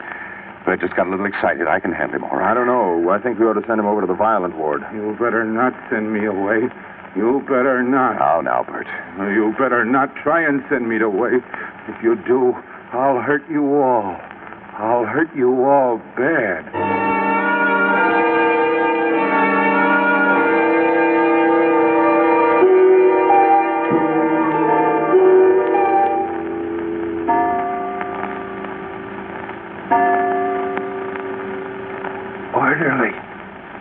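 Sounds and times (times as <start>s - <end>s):
speech: 0.7s - 17.0s
clock striking with resonant ringing strokes: 16.7s - 32.5s.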